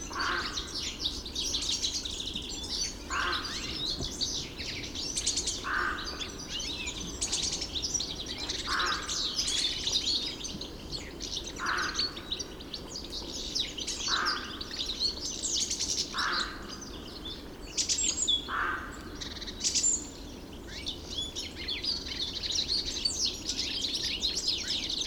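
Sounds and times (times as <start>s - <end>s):
European goldfinch song in a park: 0.0s - 25.0s.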